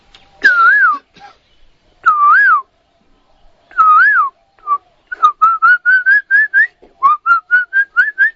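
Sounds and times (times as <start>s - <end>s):
person whistling an imitation of an Asian koel call: 0.4s - 1.0s, 3.8s - 8.3s.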